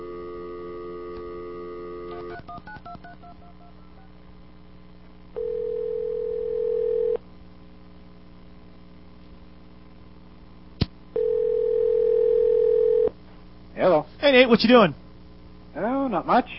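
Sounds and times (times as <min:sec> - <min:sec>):
telephone dial tone: 0:00.0 - 0:03.5, 0:05.4 - 0:07.2, 0:11.2 - 0:13.1
speech: 0:02.3 - 0:04.0, 0:13.8 - 0:15.0, 0:16.1 - 0:16.5.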